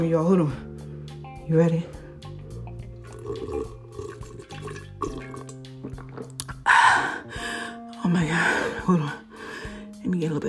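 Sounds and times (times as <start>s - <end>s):
speech: 0.0s - 0.8s, 1.5s - 2.0s, 8.1s - 9.2s
slurping hot tea from a cup: 3.0s - 6.7s.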